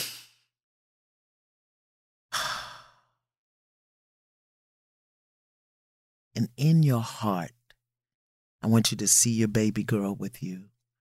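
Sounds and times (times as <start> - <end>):
person taking breaths on request: 2.3 - 3.2
speech: 6.4 - 7.6, 8.6 - 10.7.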